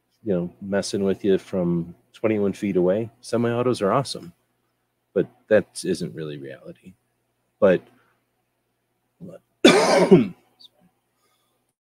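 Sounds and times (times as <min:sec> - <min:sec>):
speech: 0:00.2 - 0:04.4, 0:05.2 - 0:07.0, 0:07.6 - 0:08.0, 0:09.2 - 0:10.7
person with a harsh throat-clearing cough: 0:09.7 - 0:10.4.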